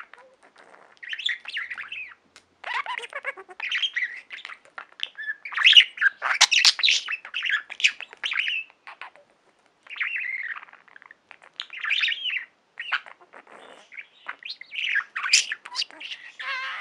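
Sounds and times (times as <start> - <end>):
budgerigar chattering: 0.0 - 9.3, 9.9 - 16.7.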